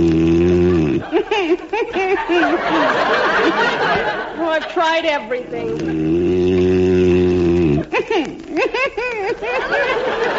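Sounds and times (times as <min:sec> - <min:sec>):
person snoring loudly with buzzing rasp and whistles: 0:00.0 - 0:01.2, 0:05.7 - 0:07.9
laughter: 0:00.7 - 0:06.0, 0:07.8 - 0:10.3
speech: 0:01.5 - 0:07.2, 0:08.1 - 0:10.3.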